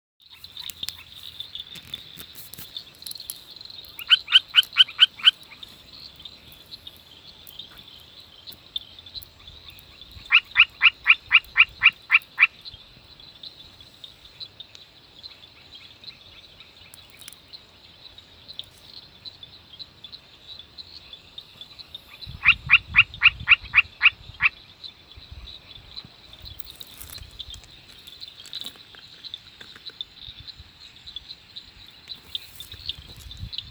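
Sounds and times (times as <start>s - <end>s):
Nannophrys ceylonensis frog: 0.2s - 33.6s.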